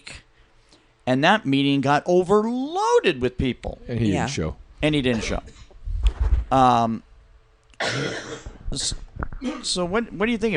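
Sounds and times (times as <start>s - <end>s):
speech: 1.1s - 5.6s, 6.5s - 7.1s, 7.8s - 10.5s
woman coughing: 5.1s - 5.6s, 7.8s - 8.6s, 9.4s - 9.8s.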